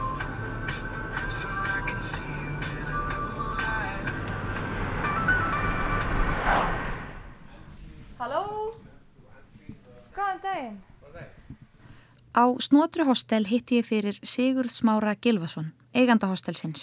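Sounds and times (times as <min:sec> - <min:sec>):
car engine hum driving on a road: 0:00.0 - 0:07.5
road rumble: 0:00.0 - 0:08.1
speech: 0:12.4 - 0:16.8.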